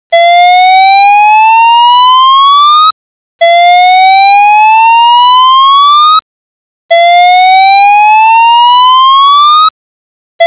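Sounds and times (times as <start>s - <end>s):
siren tone: 0.1s - 6.2s, 6.9s - 9.8s.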